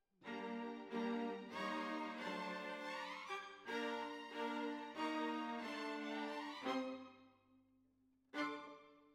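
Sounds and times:
violas playing: 0.3s - 7.0s.

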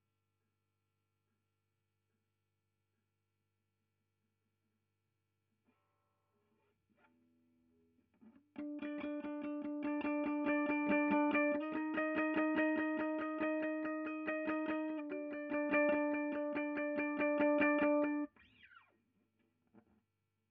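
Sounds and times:
guitar recorded with ribbon microphone: 6.3s - 18.9s.

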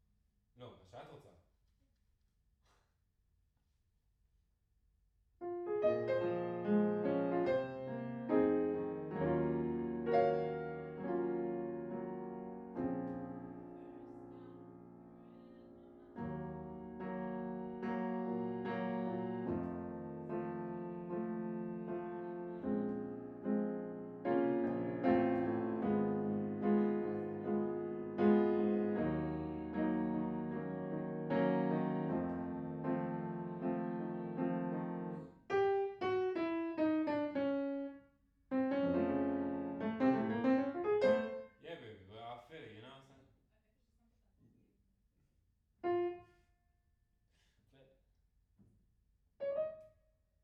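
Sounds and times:
piano in a room: 5.4s - 42.1s, 45.8s - 46.5s, 49.4s - 50.0s.

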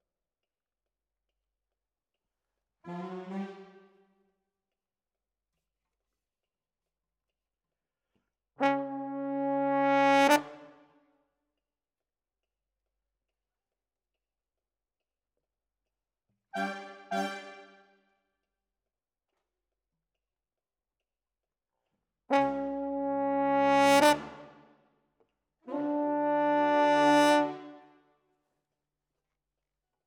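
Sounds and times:
horns: 8.6s - 10.8s, 16.6s - 17.8s, 22.3s - 24.6s, 25.7s - 27.9s.

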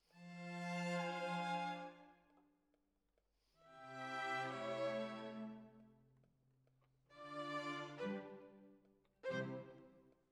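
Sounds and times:
violins: 0.2s - 2.0s, 3.7s - 5.8s, 7.1s - 10.0s.

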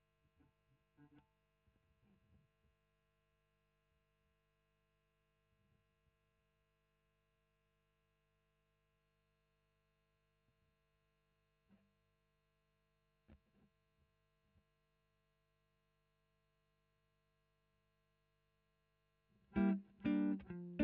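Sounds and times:
electric guitar: 19.5s - 20.8s.

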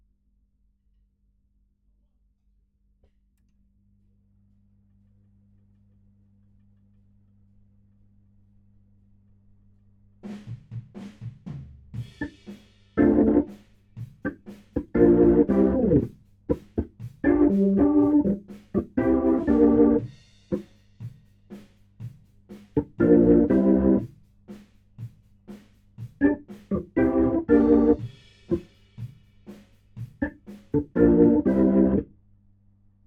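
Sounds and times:
Hammond organ: 13.0s - 13.6s, 14.2s - 20.6s, 22.8s - 24.1s, 26.2s - 28.6s, 30.2s - 32.1s.

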